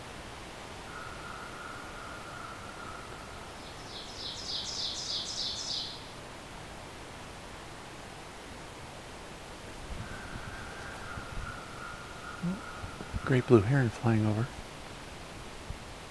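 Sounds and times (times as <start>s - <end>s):
steady outdoor hiss: 0.0s - 16.0s
pine warbler singing in a red pine: 10.1s - 13.6s
speech: 13.3s - 14.6s.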